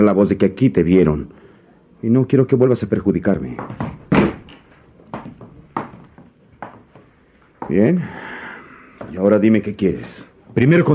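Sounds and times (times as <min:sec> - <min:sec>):
speech: 0:00.0 - 0:01.4, 0:02.0 - 0:04.3, 0:07.7 - 0:08.3, 0:09.1 - 0:10.9
door swinging shut and latching: 0:03.6 - 0:06.3.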